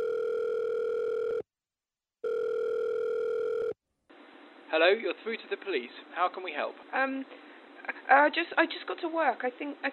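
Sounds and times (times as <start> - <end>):
mobile phone electronic ringback tones on a call to the police: 0.0 - 1.4, 2.2 - 3.8
speech: 4.7 - 7.5, 8.1 - 9.9.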